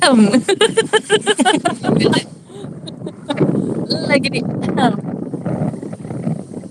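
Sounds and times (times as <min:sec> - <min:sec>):
outdoor wind noise on the microphone: 0:00.0 - 0:06.6
speech: 0:00.1 - 0:02.3, 0:04.0 - 0:05.7
laughter: 0:00.3 - 0:03.4.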